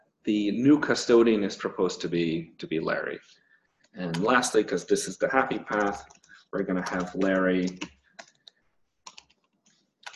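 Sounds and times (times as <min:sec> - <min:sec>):
speech: 0:00.2 - 0:08.0
typing on a computer keyboard: 0:05.4 - 0:10.1.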